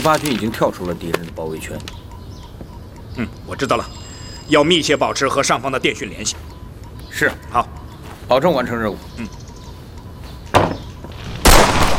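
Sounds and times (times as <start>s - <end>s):
speech: 0.0s - 2.0s, 3.2s - 6.5s, 7.1s - 9.4s
gunshot blasts in a wartime battle scene: 11.3s - 11.9s.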